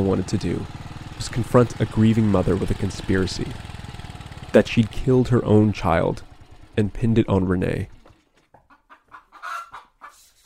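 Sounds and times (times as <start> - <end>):
speech: 0.0 - 3.7, 4.5 - 8.0
chickens clucking on a small farm of banana trees and cassava plants: 8.5 - 10.4.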